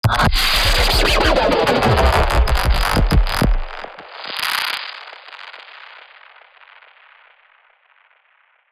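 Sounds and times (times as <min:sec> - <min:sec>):
broken tape sound effect: 0:00.0 - 0:04.3.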